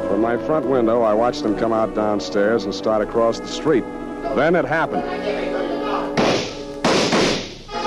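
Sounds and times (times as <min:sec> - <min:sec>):
speech: 0:00.2 - 0:05.5
gunshot fired in a street: 0:06.2 - 0:07.6.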